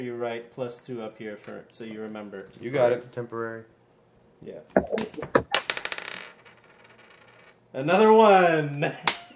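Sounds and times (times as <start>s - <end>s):
speech: 0.0s - 3.8s, 4.4s - 5.5s, 7.7s - 9.2s
dice rolling across a table during a tabletop game: 4.8s - 7.6s.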